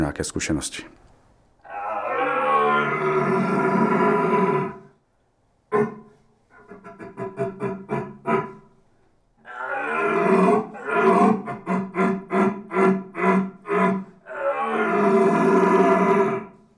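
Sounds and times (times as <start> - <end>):
speech: 0.0 - 1.0
man imitating red deer stag rut roars: 1.7 - 4.8, 9.4 - 16.5.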